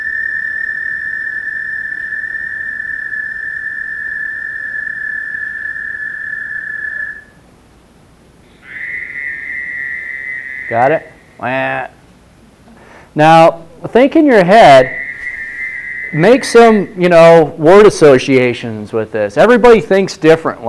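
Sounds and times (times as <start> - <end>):
Fowler's toad nasal buzzing call: 0.0 - 7.4, 8.4 - 11.8, 14.7 - 17.3
speech: 10.7 - 12.0, 13.2 - 15.0, 16.1 - 20.6.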